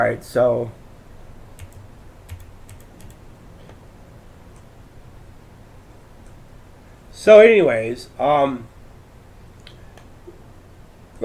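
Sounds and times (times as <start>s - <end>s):
speech: 0.0s - 0.8s, 7.2s - 8.7s
steady low hiss: 0.0s - 11.2s
computer keyboard keys repeating rapidly: 1.6s - 3.2s.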